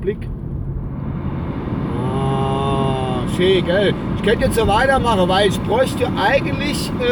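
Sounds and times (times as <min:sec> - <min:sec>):
speech: 0:00.0 - 0:00.5, 0:03.4 - 0:07.1
car heater fan blowing air: 0:01.7 - 0:07.1.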